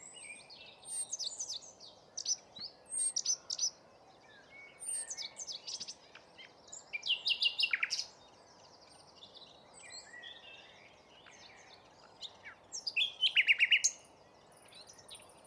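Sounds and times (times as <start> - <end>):
common nightingale Luscinia megarhynchos song: 0.0 - 15.4.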